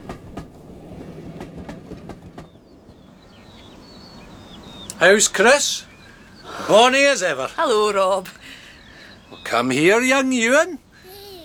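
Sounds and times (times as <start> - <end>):
train wheels clickety-clack: 0.0 - 3.2
distant train passing: 0.0 - 11.0
speech: 5.0 - 5.9, 6.7 - 8.4, 9.5 - 10.8.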